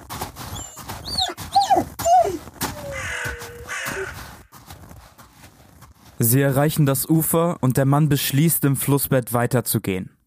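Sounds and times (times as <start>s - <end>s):
rustling and crunching: 0.0s - 7.0s
dog whimpering: 0.5s - 4.2s
speech: 6.3s - 10.2s.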